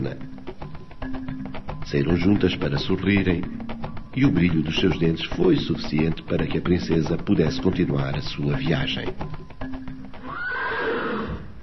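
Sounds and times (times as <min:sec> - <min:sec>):
speech: 0:01.9 - 0:03.6, 0:04.2 - 0:09.4
horse neighing: 0:10.2 - 0:11.5.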